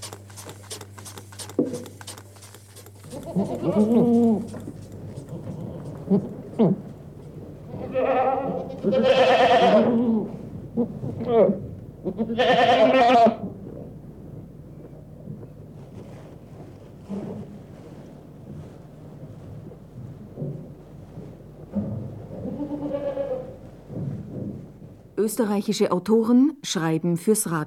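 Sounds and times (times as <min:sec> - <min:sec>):
Alpine goats bleating: 0:03.0 - 0:04.6, 0:07.7 - 0:10.3, 0:12.0 - 0:13.4, 0:22.4 - 0:23.6
speech: 0:03.4 - 0:04.7, 0:06.1 - 0:06.8, 0:12.2 - 0:12.7, 0:25.4 - 0:27.6
steady low rumble of wind: 0:03.6 - 0:25.8.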